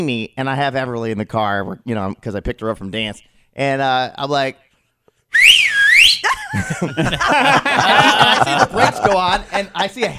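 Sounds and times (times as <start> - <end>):
speech: 0.0 - 4.6, 6.5 - 10.1
person whistling in a pharmacy parking lot: 5.3 - 6.3
laughter: 6.2 - 10.1.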